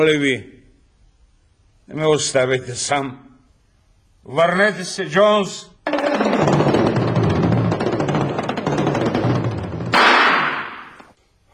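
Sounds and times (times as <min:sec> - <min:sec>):
speech: 0:00.0 - 0:00.6, 0:01.9 - 0:03.3, 0:04.2 - 0:06.8
rapid gunfire in a film scene: 0:05.9 - 0:11.0.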